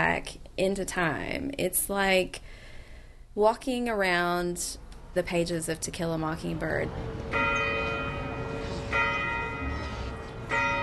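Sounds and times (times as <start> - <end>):
speech: 0.0 - 2.6, 3.4 - 7.5
old courthouse domed clock tower bell tolling the hour: 6.6 - 10.8.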